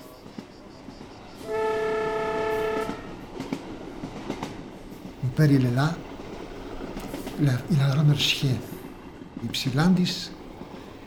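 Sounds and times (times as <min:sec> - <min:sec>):
tram wheels rattling and clacking on the rails: 0:00.0 - 0:11.0
tram sounding a steady horn-like tone: 0:01.4 - 0:03.2
speech: 0:05.4 - 0:06.1, 0:07.4 - 0:08.7, 0:09.4 - 0:10.4.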